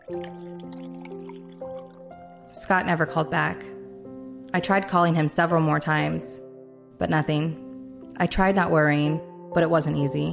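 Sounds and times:
water pouring into a glass: 0.0s - 2.6s
speech: 0.1s - 0.8s, 2.6s - 3.7s, 4.5s - 6.4s, 7.0s - 7.6s, 8.2s - 10.3s.

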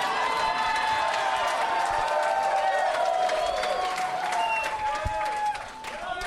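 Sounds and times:
crowd shouts and whoops: 0.0s - 6.2s
large live audience applauding: 0.0s - 6.2s.

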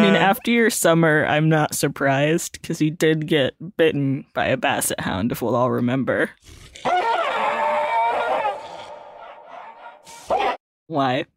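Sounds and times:
speech: 0.3s - 7.3s, 10.3s - 11.3s
German Shepherd barking: 8.2s - 10.6s.

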